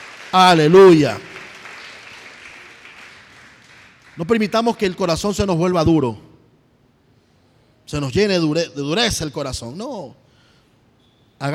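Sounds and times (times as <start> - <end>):
church congregation applauding during a sermon: 0.0 - 5.0
speech: 0.3 - 1.3, 4.2 - 6.3, 7.9 - 10.2, 11.4 - 11.5.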